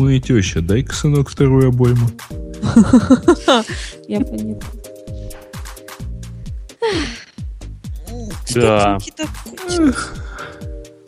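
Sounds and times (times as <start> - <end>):
speech: 0.0 - 4.9, 6.9 - 7.2, 8.5 - 10.2
laughter: 2.6 - 4.6
person yawning: 6.8 - 7.4, 9.7 - 10.7.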